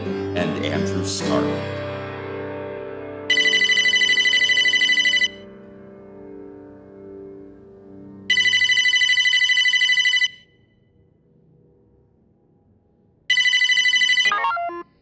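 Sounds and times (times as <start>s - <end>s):
speech: 0.4s - 1.8s
telephone ringing for an incoming call: 3.3s - 5.4s, 8.3s - 10.5s, 13.3s - 14.8s.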